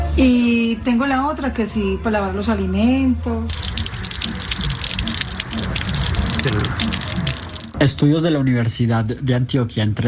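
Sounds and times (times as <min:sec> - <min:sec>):
speech: 0:00.2 - 0:03.7, 0:06.4 - 0:07.2, 0:07.8 - 0:10.0
water pouring into a container: 0:03.5 - 0:08.0.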